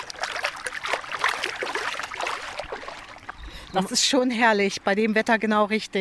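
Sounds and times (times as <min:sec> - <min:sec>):
feet paddling and splashing in water: 0:00.0 - 0:04.0
speech: 0:03.7 - 0:05.9.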